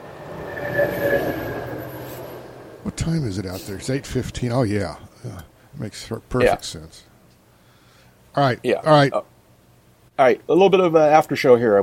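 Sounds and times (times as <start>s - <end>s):
train rumbling: 0.0s - 5.0s
speech: 3.0s - 7.1s, 8.4s - 9.3s, 10.2s - 11.8s.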